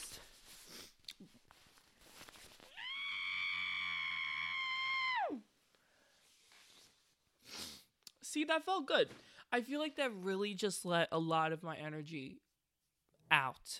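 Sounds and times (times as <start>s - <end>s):
shuffling: 0.0s - 2.7s
person screaming: 2.7s - 5.4s
speech: 8.4s - 12.4s, 13.3s - 13.7s.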